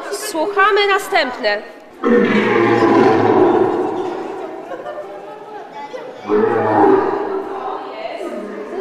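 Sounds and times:
voices chattering at a children's workshop: 0.0 - 8.8
speech: 0.3 - 2.7
lion roaring: 2.0 - 4.6, 6.2 - 7.6
laughter: 2.5 - 6.4.

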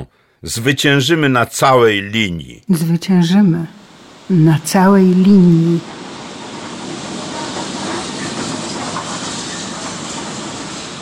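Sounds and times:
speech: 0.0 - 6.0
train running on rails: 2.8 - 11.0.

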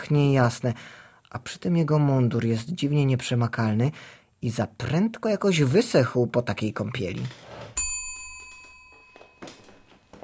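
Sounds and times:
speech: 0.0 - 7.6
soft clicks and rustling movements: 7.1 - 10.2
small service bell rung to summon a servant: 7.8 - 10.1.

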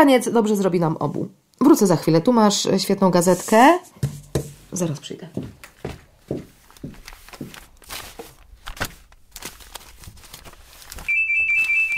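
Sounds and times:
speech: 0.0 - 5.6
footsteps on a hard floor: 3.4 - 8.4
telephone ringing with a loud steady electronic tone: 11.1 - 11.9.

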